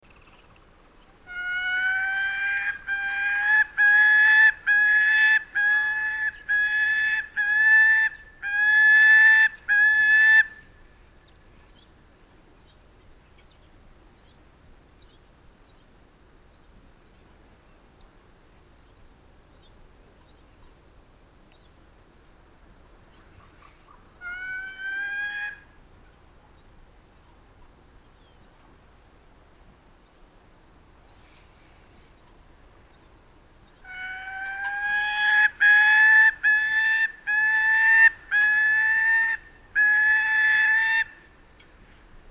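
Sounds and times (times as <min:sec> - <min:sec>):
gyrfalcon calling: 0:01.2 - 0:10.7, 0:23.3 - 0:25.7, 0:33.8 - 0:41.8.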